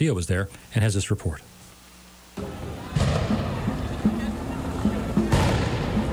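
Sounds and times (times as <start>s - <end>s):
speech: 0.0s - 1.6s
police grenades exploding during a street protest with tear gas: 2.4s - 4.0s, 5.3s - 6.1s.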